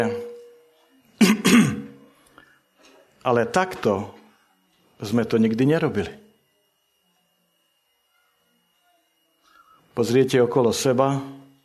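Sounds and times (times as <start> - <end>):
speech: 0.0 - 0.3, 3.2 - 4.2, 5.0 - 6.2, 10.0 - 11.4
preacher clearing his throat: 1.2 - 2.0.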